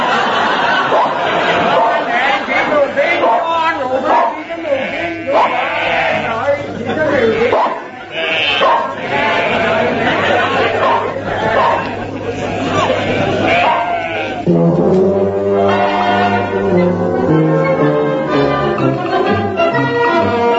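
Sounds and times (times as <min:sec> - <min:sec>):
laughter: 0:00.0 - 0:14.6, 0:15.6 - 0:20.5
crowd of sheep bleating: 0:04.0 - 0:14.5, 0:15.6 - 0:16.8, 0:20.2 - 0:20.5.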